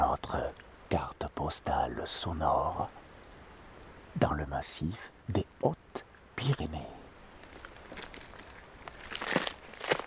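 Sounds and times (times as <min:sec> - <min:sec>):
speech: 0:00.2 - 0:03.0, 0:04.2 - 0:07.0
crunching on an icy road in the Hautes-Pyrénées mountains: 0:07.2 - 0:10.0.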